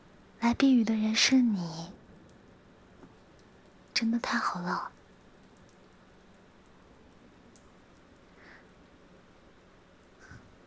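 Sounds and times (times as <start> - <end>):
steady rain: 0.0 - 10.6
speech: 0.4 - 2.0, 4.0 - 5.0
heavier raindrops tapping: 0.5 - 8.8.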